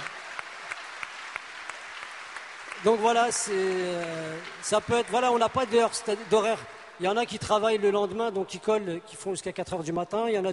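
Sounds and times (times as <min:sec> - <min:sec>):
audience applause: 0:00.0 - 0:08.2
speech: 0:02.8 - 0:10.5.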